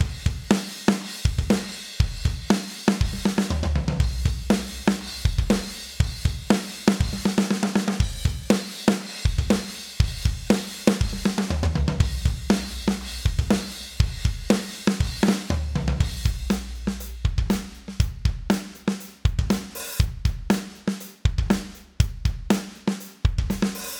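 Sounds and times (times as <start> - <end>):
drums: 0.0 - 23.9.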